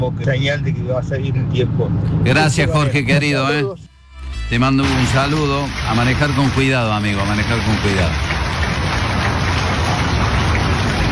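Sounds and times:
speech: 0.0 - 3.9, 4.5 - 8.6
steady dense rainfall: 4.8 - 11.1.

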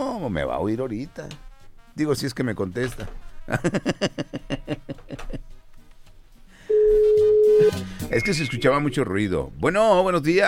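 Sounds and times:
speech: 0.2 - 5.6, 7.5 - 10.4
laughter: 3.5 - 5.6
steady low-pitched telephone call tone: 6.7 - 7.8.

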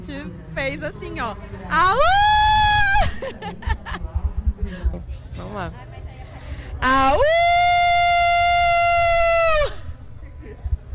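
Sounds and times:
speech: 0.0 - 2.3, 3.2 - 4.1, 4.7 - 5.9, 6.8 - 7.6
laughter: 2.8 - 4.3, 10.1 - 10.9
woman imitating a wolf howl: 6.8 - 9.8.

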